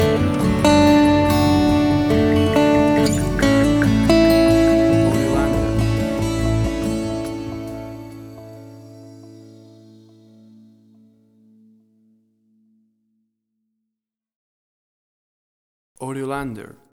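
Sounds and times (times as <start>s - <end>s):
acoustic guitar stinger: 0.0s - 10.5s.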